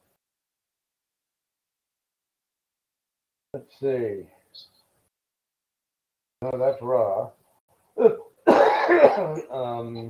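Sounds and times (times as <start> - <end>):
speech: 3.6 - 4.8, 6.4 - 7.4, 8.0 - 8.2, 8.9 - 10.0
person coughing: 8.0 - 9.5
throat-clearing rasp: 8.0 - 9.5.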